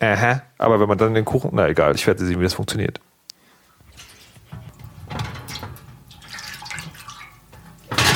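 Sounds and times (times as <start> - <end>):
speech: 0.0 - 3.1
water poured onto a deep metal oven baking tray: 3.9 - 8.1.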